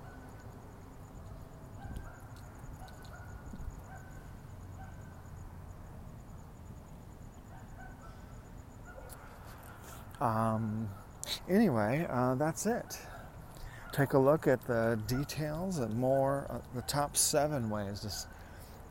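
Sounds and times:
dog giving a honking bark: 1.8 - 4.2, 4.8 - 5.1, 7.5 - 8.2, 8.8 - 9.4
speech: 10.2 - 13.1, 14.0 - 18.4.

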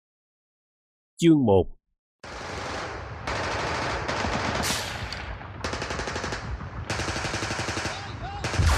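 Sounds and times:
speech: 1.2 - 1.8
rapid gunfire in sustained volleys: 2.2 - 8.7.

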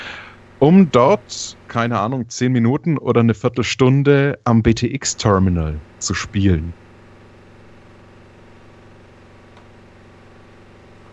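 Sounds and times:
washing machine winding down its cycle: 0.0 - 2.0, 5.1 - 11.1
speech: 0.6 - 6.8.

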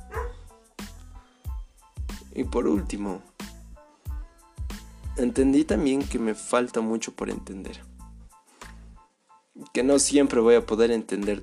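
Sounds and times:
small dog barking and yipping: 0.0 - 0.5
speech: 2.4 - 3.3, 5.2 - 7.9, 9.8 - 11.4.

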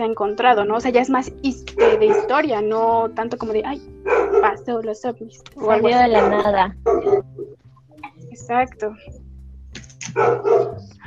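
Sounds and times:
speech: 0.0 - 7.3, 8.4 - 9.2, 10.1 - 11.0
dog barking: 1.8 - 2.4, 4.1 - 4.6, 5.6 - 7.5, 10.1 - 10.9.

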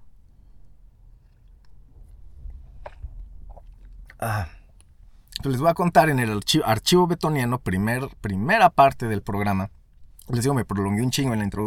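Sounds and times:
low room rumble: 0.0 - 11.6
person slurping and swallowing coffee: 1.2 - 5.4
speech: 4.2 - 4.6, 5.4 - 11.6.

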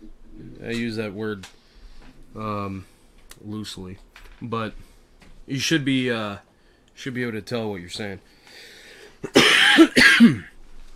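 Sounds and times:
speech: 0.6 - 1.6, 2.3 - 4.9, 5.5 - 10.5
person coughing: 9.2 - 10.6.

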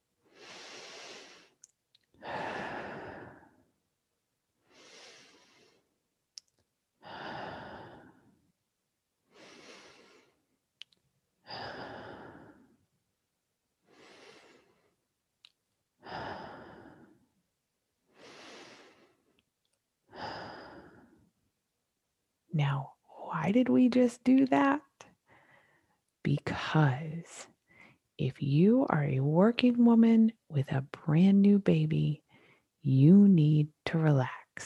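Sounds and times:
deep breaths in through nose and out through mouth: 0.2 - 1.6, 2.2 - 3.7, 4.6 - 6.0, 9.3 - 10.5, 11.4 - 12.8, 13.8 - 15.0, 16.0 - 17.3, 18.1 - 19.4, 25.3 - 26.0
speech: 23.5 - 24.9, 26.2 - 27.5, 28.2 - 32.2, 32.8 - 34.6.

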